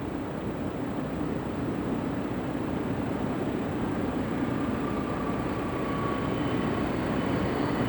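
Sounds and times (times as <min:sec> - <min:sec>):
faint whine: 0:00.2 - 0:07.8
droning piston engine: 0:03.5 - 0:07.8.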